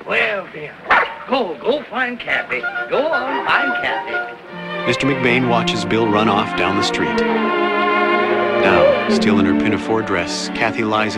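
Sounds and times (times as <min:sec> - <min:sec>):
speech: 0:00.1 - 0:07.9, 0:08.6 - 0:11.1
collie dog barking: 0:08.6 - 0:09.1.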